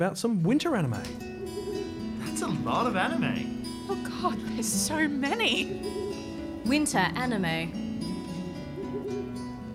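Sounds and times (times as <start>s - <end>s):
speech: 0.0s - 1.3s, 2.4s - 6.0s, 6.6s - 7.8s
owl hooting: 1.3s - 2.1s, 5.4s - 6.8s, 7.8s - 9.6s.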